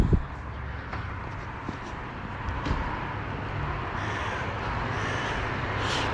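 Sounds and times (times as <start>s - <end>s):
street traffic noise on Viale della Repubblica: 0.0s - 6.1s
crow cawing: 3.9s - 6.1s.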